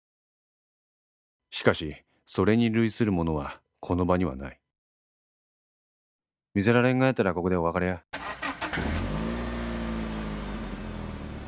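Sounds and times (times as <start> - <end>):
speech: 1.6 - 4.6, 6.6 - 8.2, 8.8 - 9.0
car engine cranking and starting: 8.2 - 11.4.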